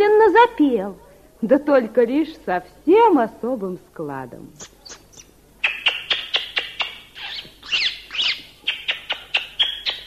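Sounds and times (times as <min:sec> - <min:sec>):
speech: 0:00.3 - 0:04.8
starling squeaking and wheezing: 0:04.6 - 0:10.0.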